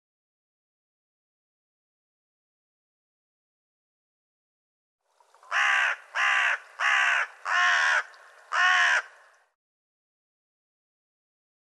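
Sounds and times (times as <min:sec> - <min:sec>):
bird giving a harsh raspy caw: 0:05.5 - 0:09.6.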